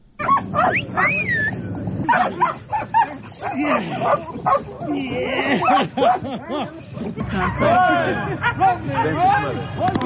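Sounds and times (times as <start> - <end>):
mine-detection dogs barking, yipping and whimpering at a dog training centre: 0.2 - 8.2
murmur of people chattering: 0.2 - 10.0
laughter: 3.0 - 9.6.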